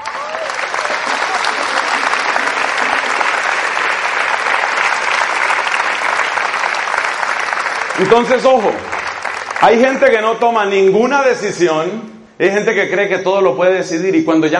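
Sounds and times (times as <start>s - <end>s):
audience applause: 0.0s - 10.4s
speech: 8.0s - 8.9s, 9.6s - 14.5s.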